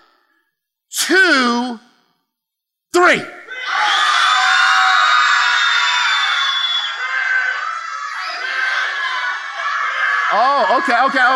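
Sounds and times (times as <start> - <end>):
speech: 3.0 - 3.9, 10.4 - 11.3
crowd shouting their pets' names: 3.5 - 11.3
people in crowd shrieking: 3.5 - 11.3.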